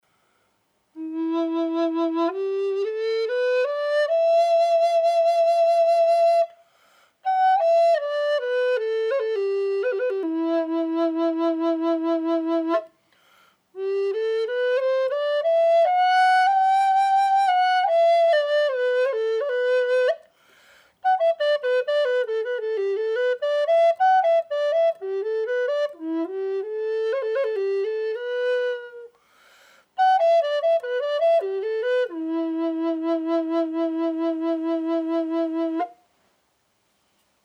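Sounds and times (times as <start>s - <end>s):
dry cedar flutes playing in E minor: 1.0s - 6.6s, 7.2s - 13.0s, 13.7s - 36.1s.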